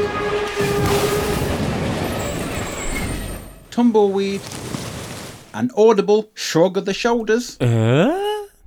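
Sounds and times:
high metallic squealing of a train: 0.0 - 4.6
loud train roaring with heavy rumbling clatter: 0.0 - 5.6
speech: 3.8 - 4.8, 5.5 - 8.2.

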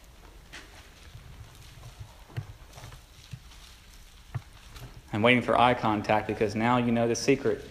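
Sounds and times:
many book pages rustling as people turn them in a large room: 0.5 - 5.1
speech: 5.2 - 7.6.

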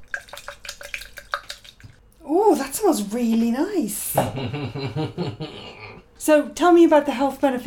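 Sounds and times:
hot water poured over herbs in a cup: 0.0 - 2.0
speech: 2.3 - 7.6
laughter: 4.2 - 5.8.

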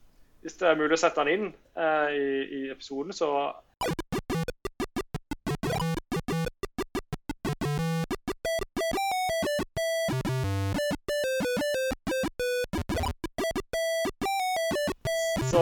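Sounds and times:
speech: 0.4 - 4.0
chiptune video game theme played on a PC speaker: 3.8 - 15.5.

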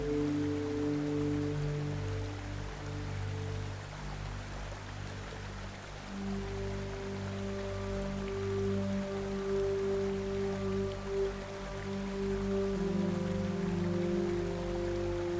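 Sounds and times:
low ambient musical drone: 0.0 - 15.3
soft steady rain pattering: 0.0 - 15.3.

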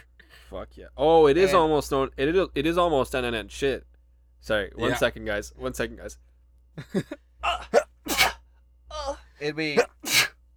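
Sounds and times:
speech: 0.5 - 7.8, 9.4 - 9.9
person sneezing: 4.8 - 5.0, 7.5 - 8.4, 9.8 - 10.3.

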